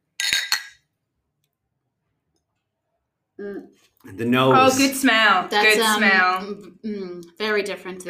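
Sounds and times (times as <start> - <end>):
drink glasses clinking together in a toast: 0.2 - 0.8
speech: 3.4 - 8.0.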